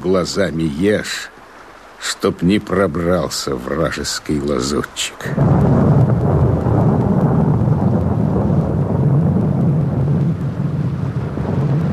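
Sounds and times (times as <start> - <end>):
speech: 0.0 - 1.4, 2.0 - 5.9
steady heavy rain: 0.0 - 11.9
deep continuous thunder rumbling: 5.2 - 11.9.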